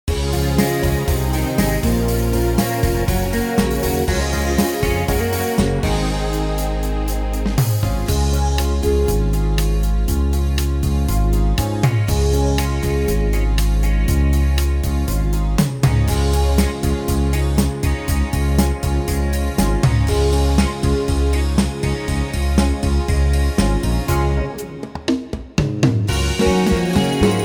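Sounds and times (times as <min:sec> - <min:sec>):
easy beat: 0:00.1 - 0:27.4.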